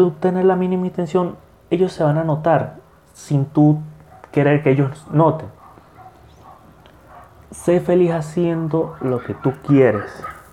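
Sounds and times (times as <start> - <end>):
speech: 0.0 - 5.6, 7.5 - 10.4
dogs barking: 4.0 - 4.5, 5.4 - 7.6, 8.4 - 10.5.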